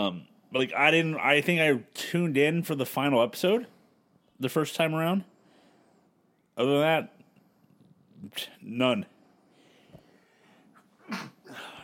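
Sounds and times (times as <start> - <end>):
speech: 0.0 - 3.8, 4.4 - 5.3, 6.6 - 7.2, 8.2 - 9.1
faint intake of breath: 5.3 - 6.5, 9.1 - 11.8
person sneezing: 10.8 - 11.8.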